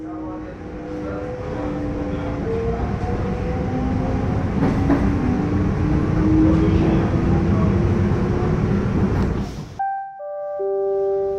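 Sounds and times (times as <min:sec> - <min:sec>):
train rumbling and screeching along the rails at a station: 0:00.0 - 0:09.8
electronic station chime: 0:09.8 - 0:11.3.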